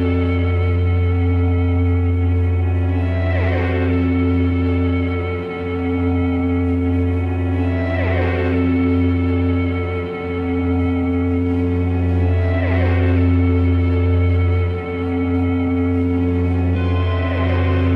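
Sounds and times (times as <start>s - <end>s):
layered guitar loops through tape delay echo: 0.0s - 17.9s.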